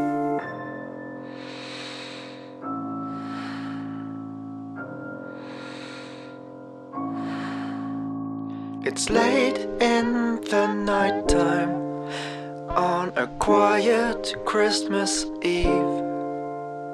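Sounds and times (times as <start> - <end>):
gentle breathing under a duvet: 1.2 - 8.9, 11.9 - 12.6
speech: 9.0 - 11.8, 13.2 - 16.0.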